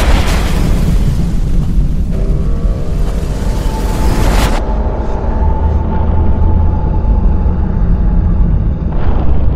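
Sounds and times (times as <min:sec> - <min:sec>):
rocket launch vehicle exploding on the launch pad: 0:00.0 - 0:02.2
heavy low rumble of exploding rocket launch vehicle: 0:00.0 - 0:09.5.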